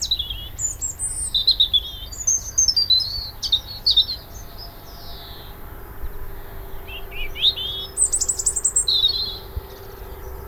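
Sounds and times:
robin singing thin high warbled phrases: 0.0s - 10.4s
steady low hum: 3.1s - 10.4s.

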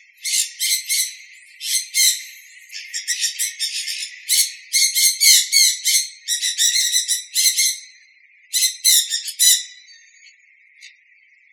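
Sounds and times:
sun conure uttering grating high screeches: 0.3s - 2.3s, 2.9s - 7.8s, 8.5s - 9.7s.

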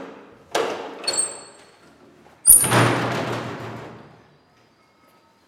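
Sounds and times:
metal door opening: 0.6s - 1.8s, 2.4s - 4.2s.

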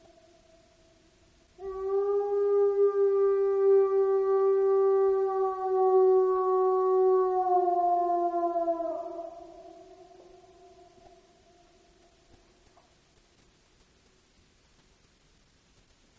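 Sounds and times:
solitary wolf howling at Cooper Creek at night: 1.6s - 11.8s.

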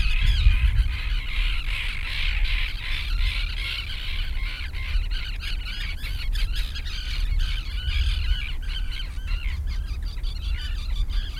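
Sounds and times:
deep steady rumble of wind or sea: 0.0s - 11.3s
many gulls squawking near the sea: 0.0s - 11.3s.

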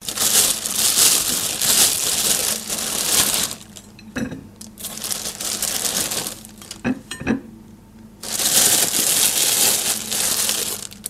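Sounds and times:
bread bag rustling: 0.0s - 3.9s, 4.7s - 6.9s, 8.2s - 11.0s.

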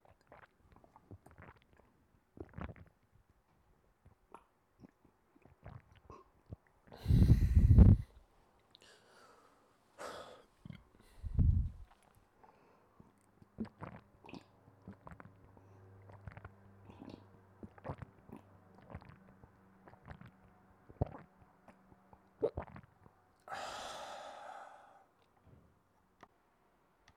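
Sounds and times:
person drinking water: 0.0s - 3.0s, 4.0s - 9.0s, 10.0s - 21.3s, 22.4s - 25.5s.

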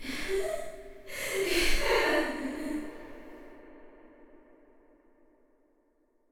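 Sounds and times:
creepy woman laughing with echo: 0.0s - 3.2s.

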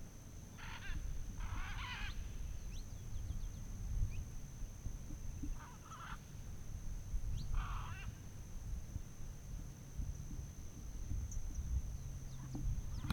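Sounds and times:
steady low background rumble: 0.0s - 13.1s
macaws uttering rough grating squawks at dawn on a fazenda in Goiás Brazil: 0.6s - 2.2s, 5.6s - 6.2s, 7.6s - 8.1s.

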